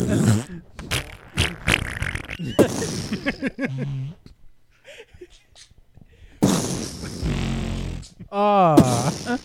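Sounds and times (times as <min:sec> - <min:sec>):
brief vocal noises: 0:00.0 - 0:04.3, 0:06.4 - 0:09.4
loud sputtering farts: 0:00.0 - 0:04.3, 0:06.4 - 0:08.2, 0:08.8 - 0:09.4.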